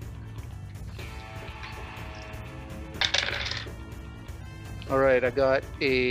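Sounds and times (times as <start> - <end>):
two dice rolled during a tabletop role-playing game: 3.0 - 3.7
speech: 4.9 - 6.1.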